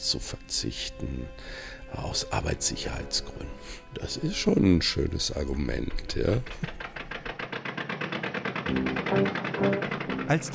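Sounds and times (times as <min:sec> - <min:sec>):
speech: 0:00.0 - 0:06.8, 0:08.7 - 0:10.5
car engine running while driven across Germany testing synthetic lubricating oils: 0:06.6 - 0:10.5.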